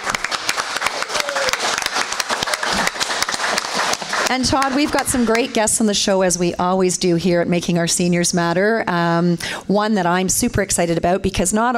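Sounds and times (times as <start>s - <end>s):
live audience applause: 0.0s - 5.6s
speech: 4.3s - 11.7s.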